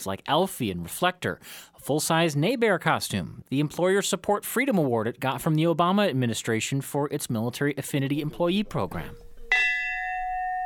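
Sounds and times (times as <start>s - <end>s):
speech: 0.0s - 9.3s
old train bell rung for a new life insurance policy: 9.4s - 10.6s.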